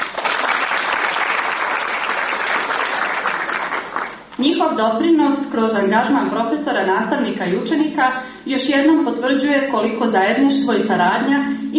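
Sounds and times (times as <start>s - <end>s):
applause from an audience at a school cultural event: 0.0s - 4.4s
speech: 4.6s - 11.7s.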